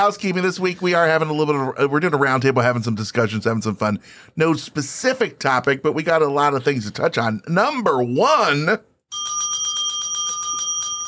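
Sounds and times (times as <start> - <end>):
speech: 0.0 - 9.4
bell being rung: 9.1 - 11.0.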